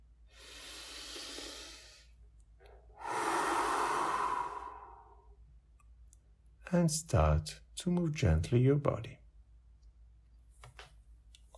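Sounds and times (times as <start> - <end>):
slow deep breath during a guided relaxation: 0.2 - 5.4
speech: 6.7 - 9.2.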